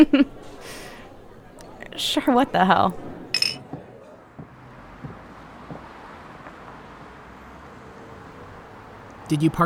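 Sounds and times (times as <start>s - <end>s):
speech: 0.0s - 0.4s, 2.0s - 3.1s, 9.3s - 9.6s
glasses clinking in a toast: 3.4s - 3.6s.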